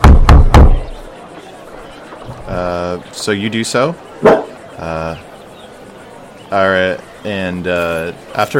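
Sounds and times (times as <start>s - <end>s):
loud hollow knocks on a door: 0.0s - 0.8s
speech: 2.5s - 5.3s, 6.5s - 8.5s.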